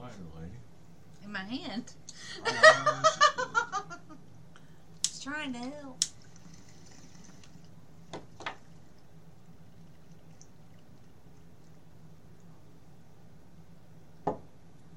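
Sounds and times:
speech: 0.2s - 4.2s, 5.2s - 6.1s
laughter: 2.4s - 4.2s
water pouring: 6.1s - 12.5s.

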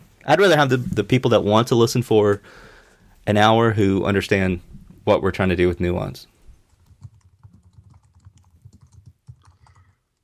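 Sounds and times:
speech: 0.2s - 6.3s
typing on a computer keyboard: 6.9s - 10.0s.

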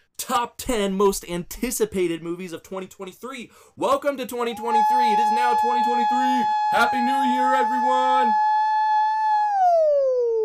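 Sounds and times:
speech: 0.3s - 8.5s
voice imitating a siren: 4.4s - 10.4s.

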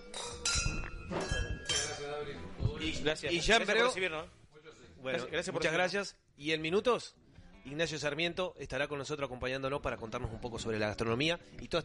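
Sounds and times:
glasses clinking in a toast in a restaurant wine cellar: 0.0s - 2.3s
speech: 2.2s - 4.4s, 5.0s - 11.8s.

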